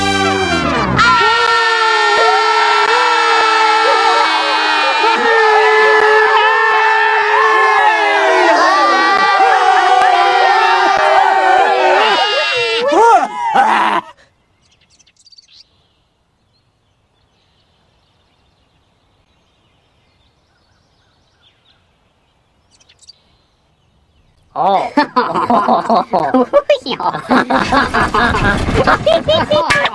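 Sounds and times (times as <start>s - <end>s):
long loud horn blast blown by priests: 0.0s - 1.1s
crowd of many voices yelling and whooping: 0.0s - 14.1s
laughter: 8.8s - 14.2s, 24.6s - 29.9s
speech: 24.6s - 29.9s.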